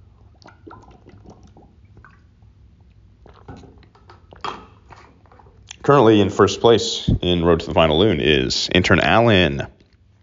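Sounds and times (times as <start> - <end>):
person drinking water with sips and swallows: 0.0 - 5.8
speech: 5.8 - 9.8.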